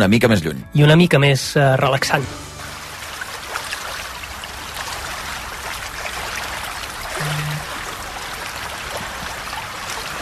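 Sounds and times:
speech: 0.0 - 2.5
sea water lapping at the Dead Sea: 2.6 - 10.2.

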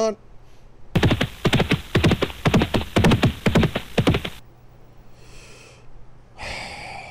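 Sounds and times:
speech: 0.0 - 0.2
horse hooves clip-clopping: 1.0 - 4.4.

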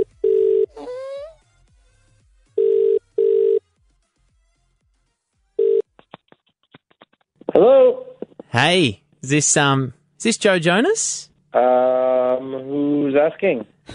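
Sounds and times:
phone call ringing tone: 0.0 - 0.7, 2.6 - 3.6, 5.6 - 5.9
speech: 8.6 - 13.9.

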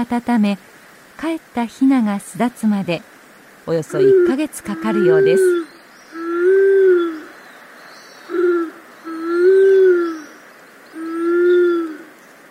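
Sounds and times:
speech: 0.0 - 3.1, 3.7 - 6.3
soft hiss: 0.0 - 12.4
Japanese wood pigeon giving deep moaning hoots: 3.8 - 7.3, 8.3 - 12.1.

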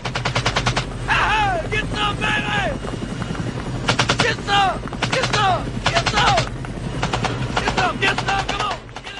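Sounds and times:
BB guns firing in bursts during a match on the field: 0.0 - 0.9, 3.8 - 9.1
steady outdoor hum: 0.0 - 9.1.

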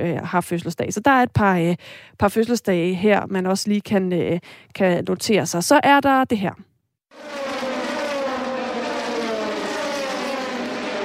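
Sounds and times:
speech: 0.0 - 7.4
racing car engines roaring at an endurance race circuit: 7.2 - 11.0.

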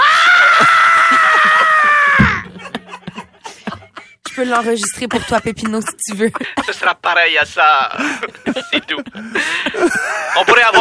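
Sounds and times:
imitated scream of a woman giving birth: 0.0 - 2.5
laughter: 0.6 - 10.7
speech: 4.4 - 10.7.

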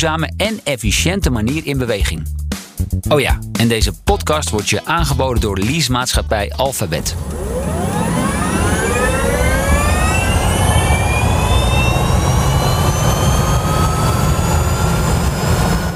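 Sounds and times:
speech: 0.0 - 8.0
broad rumble of road and motor noise: 7.1 - 15.9
electric car accelerating with a steady whine: 7.1 - 15.9.

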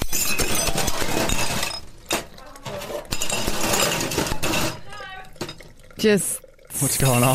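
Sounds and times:
tinkling glass debris: 0.0 - 5.6
glass shattering and smashing: 0.0 - 5.8
speech: 6.0 - 7.3.

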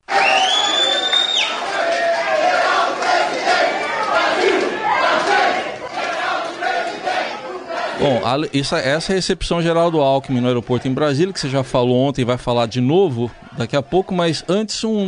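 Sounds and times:
large crowd chanting and shouting at a political campaign reception at an airport: 0.0 - 8.6, 9.6 - 15.0
sharp whistle: 0.1 - 1.6
speech: 8.0 - 15.0.

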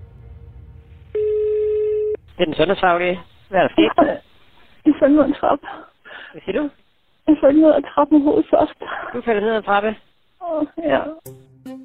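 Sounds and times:
faint low hum: 0.0 - 11.2
electronic ringback tone on an emergency line: 1.1 - 2.2
speech: 2.4 - 11.5.

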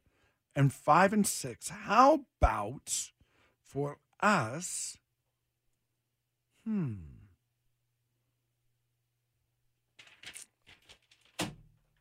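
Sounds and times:
speech: 0.6 - 5.0, 6.6 - 7.2
low vocal groan: 6.6 - 7.4
paper rustling: 10.0 - 11.9
paper slammed down on a desk: 10.1 - 11.7.

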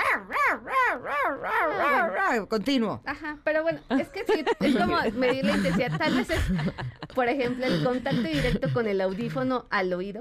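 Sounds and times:
small Pomeranian dogs yapping: 0.0 - 2.4
speech: 1.3 - 10.1
laughter: 3.9 - 9.4.

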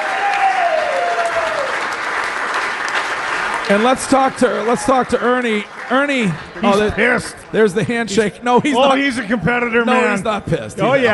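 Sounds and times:
crowd applauding: 0.0 - 8.0
speech: 3.7 - 11.1.

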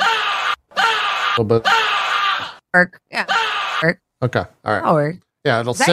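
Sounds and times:
person screaming loudly and harshly: 0.0 - 2.6
speech: 1.4 - 1.9, 2.8 - 5.9.

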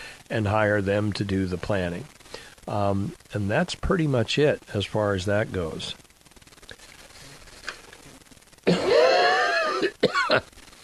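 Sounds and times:
speech: 0.3 - 6.0, 10.3 - 10.6
person clearing throat in a rough rasping rumble: 8.7 - 10.5
person coughing: 8.7 - 10.5.

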